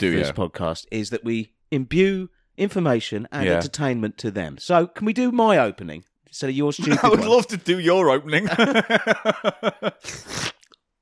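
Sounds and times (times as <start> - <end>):
speech: 0.0 - 10.6
laughter: 6.8 - 7.6, 8.4 - 10.1
wet hissing mouth slurp: 10.0 - 10.8
voiced mouth pops as a Foley sound effect: 10.0 - 10.9.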